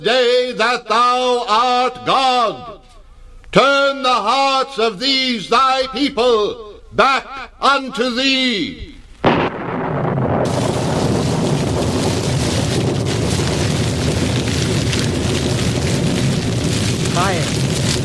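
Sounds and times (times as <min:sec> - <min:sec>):
speech: 0:00.0 - 0:02.8, 0:03.6 - 0:10.6
roaring fire burning an altar: 0:09.0 - 0:18.0.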